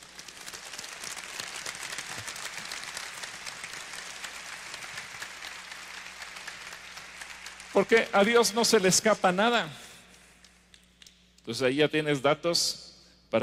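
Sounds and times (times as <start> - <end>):
crowd applauding: 0.0 - 9.8
speech: 7.8 - 9.8, 11.5 - 13.4.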